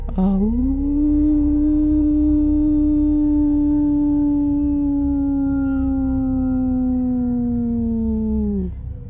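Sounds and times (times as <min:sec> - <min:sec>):
speech: 0:00.1 - 0:01.6
dog howling: 0:00.4 - 0:08.8.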